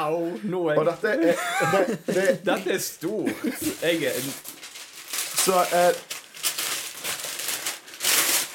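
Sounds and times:
speech: 0:00.0 - 0:04.6, 0:05.4 - 0:06.2
laughter: 0:01.2 - 0:02.6, 0:03.2 - 0:03.8
wrapping paper crinkling as a framed gift is unwrapped: 0:02.1 - 0:08.5.

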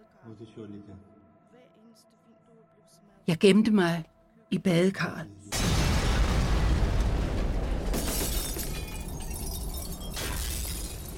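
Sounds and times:
speech: 0:00.3 - 0:01.2, 0:02.9 - 0:05.5
loud missile explosion: 0:05.5 - 0:09.1
apartment window glass shattering: 0:07.8 - 0:11.1.

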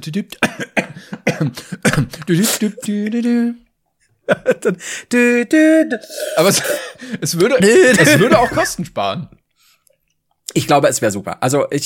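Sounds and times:
speech: 0:00.0 - 0:03.6, 0:04.3 - 0:09.4, 0:10.5 - 0:11.8
person coughing: 0:00.4 - 0:02.8, 0:06.1 - 0:07.0, 0:07.7 - 0:08.8
laughter: 0:04.2 - 0:04.8, 0:07.1 - 0:08.8.

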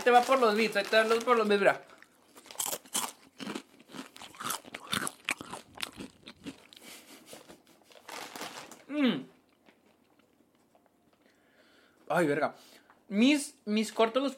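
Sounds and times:
speech: 0:00.0 - 0:01.9, 0:12.1 - 0:14.3
crunchy chewing of tacos: 0:01.9 - 0:07.2.

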